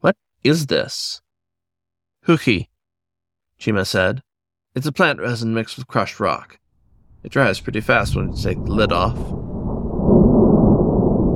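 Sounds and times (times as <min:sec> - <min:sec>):
speech: 0:00.0 - 0:01.2, 0:02.3 - 0:02.7, 0:03.6 - 0:06.6, 0:07.2 - 0:09.4
thunder of an approaching storm: 0:06.8 - 0:11.3.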